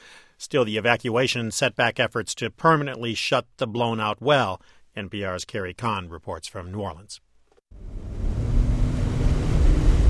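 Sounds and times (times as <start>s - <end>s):
speech: 0.4s - 7.9s
small boat engine droning on the Mississippi River Channel: 7.7s - 10.0s
water noise of the Mississippi River Channel: 7.7s - 10.0s
rushing wind on the Mississippi River Channel: 7.8s - 10.0s.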